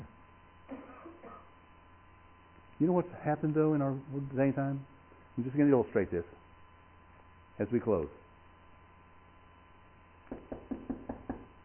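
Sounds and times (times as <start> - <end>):
speech: 2.8 - 6.4, 7.6 - 8.2
soft knocks on a hard surface: 10.3 - 11.5.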